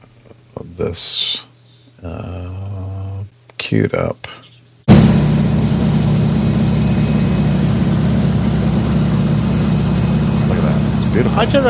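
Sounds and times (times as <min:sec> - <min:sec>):
speech: 0:00.8 - 0:02.3, 0:03.6 - 0:04.4, 0:11.2 - 0:11.6
DC-3 aircraft propeller engines droning: 0:04.9 - 0:11.6.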